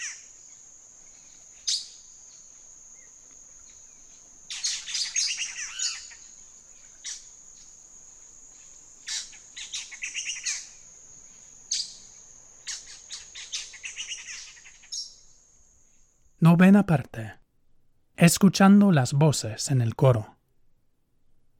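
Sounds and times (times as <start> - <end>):
Black-headed Saltator chattering in noisy bursts of harsh notes: 0.0 - 0.2, 4.5 - 6.2, 9.1 - 10.7, 12.7 - 15.1
steady high insect-like whine: 0.0 - 16.3
speech: 16.4 - 17.4, 18.2 - 20.4.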